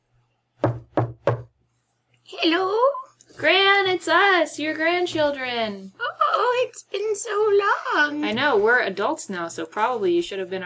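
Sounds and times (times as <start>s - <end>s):
firm knocking on a wooden door: 0.6s - 1.5s
speech: 2.3s - 10.6s.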